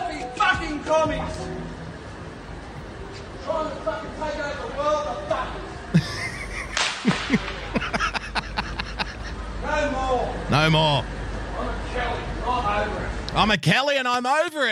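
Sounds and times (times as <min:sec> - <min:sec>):
murmuring voices: 0:00.0 - 0:12.4
crowd noise: 0:00.0 - 0:13.6
speech: 0:00.7 - 0:01.6, 0:10.5 - 0:11.2, 0:12.0 - 0:14.7
laughter: 0:05.9 - 0:09.5
whip cracking: 0:06.8 - 0:07.6.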